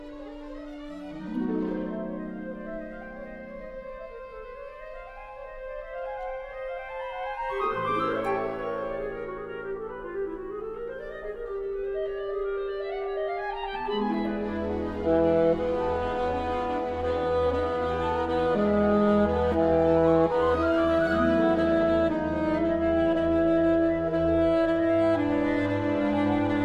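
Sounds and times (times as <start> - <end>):
alto saxophone playing a fantasia: 0.0 - 26.6
orchestra playing: 0.0 - 26.6.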